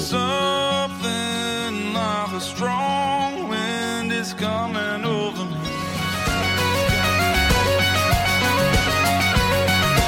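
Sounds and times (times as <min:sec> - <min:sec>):
song with melodic lead over steady bass line: 0:00.0 - 0:10.0
bright percussion: 0:05.7 - 0:10.0.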